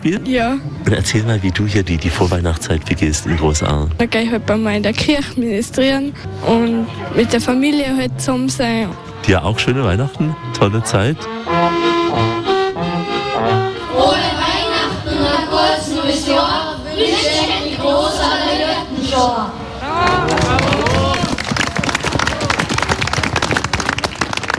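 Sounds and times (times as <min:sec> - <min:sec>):
speech: 0:00.0 - 0:12.0
music: 0:02.8 - 0:19.3
audience applause for children's shepherds' nativity play: 0:19.8 - 0:24.5.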